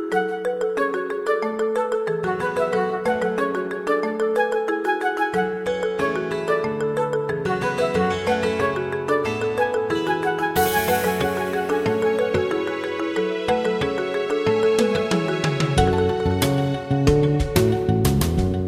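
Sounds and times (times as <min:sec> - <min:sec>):
fusion music: 0:00.1 - 0:18.6.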